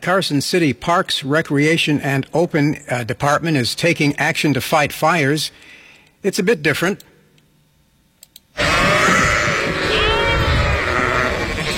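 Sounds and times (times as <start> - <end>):
speech: 0.0 - 7.1
faint clicks: 8.2 - 8.5
flock of sheep bleating loudly: 8.6 - 11.7.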